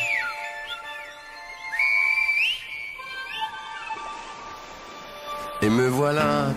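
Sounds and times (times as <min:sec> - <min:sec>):
shrill whistled language in the Silbo style: 0:00.0 - 0:04.2
speech: 0:05.6 - 0:06.5.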